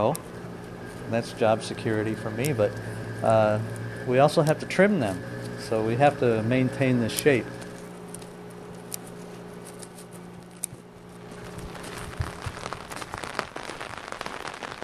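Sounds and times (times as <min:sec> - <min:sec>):
speech: 0:00.0 - 0:00.3, 0:01.1 - 0:07.6
low constant hum: 0:00.0 - 0:14.8
steady rain pattering on hard surfaces: 0:11.4 - 0:14.8.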